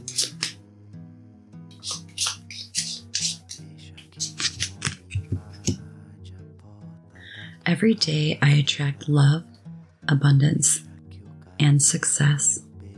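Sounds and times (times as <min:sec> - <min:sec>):
deck of cards being shuffled: 0:00.0 - 0:00.6, 0:01.8 - 0:05.8
speech: 0:07.7 - 0:09.5, 0:10.1 - 0:10.9, 0:11.6 - 0:12.6.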